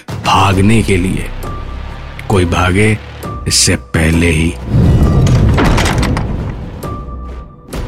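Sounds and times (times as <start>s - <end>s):
speech: 0.3s - 1.4s, 2.3s - 4.8s
heavy church door slamming shut: 4.8s - 6.6s.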